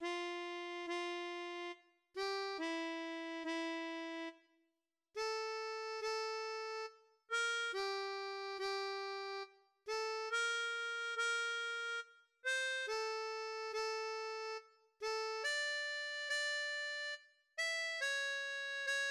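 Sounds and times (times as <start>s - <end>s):
harmonica piece: 0.0s - 4.4s, 5.2s - 19.0s.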